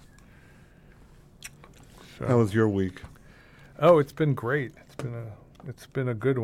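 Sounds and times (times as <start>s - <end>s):
wet chewing of gum: 1.4s - 1.9s
speech: 2.2s - 3.2s, 3.8s - 6.4s.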